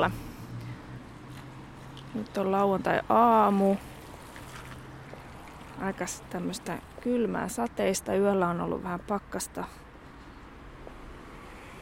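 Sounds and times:
speech: 0.0 - 0.3, 2.1 - 3.9, 5.8 - 9.8
car tire noise in a parking lot: 0.0 - 7.8.

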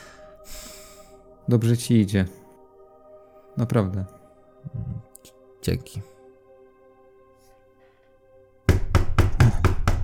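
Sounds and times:
speech: 1.5 - 2.4, 3.6 - 6.1
knocking on a door downstairs: 8.7 - 10.0.

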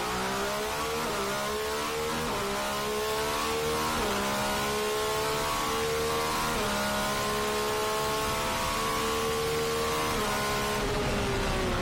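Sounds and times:
racing car engine revving through gear changes: 0.0 - 11.8.

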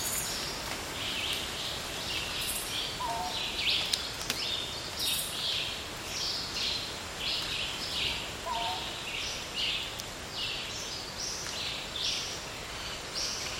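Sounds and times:
insects chirping and buzzing in a dry jungle: 0.0 - 13.5
rufous-and-white wren and long tailed manakins calling in a dry jungle: 0.0 - 13.5.

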